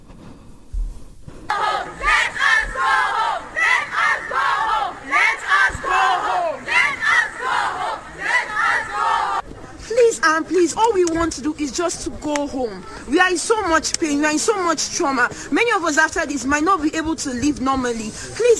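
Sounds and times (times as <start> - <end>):
crowd of African students chanting in unison outside a hotel in Sumy Ukraine: 1.5 - 9.5
speech: 10.3 - 18.5.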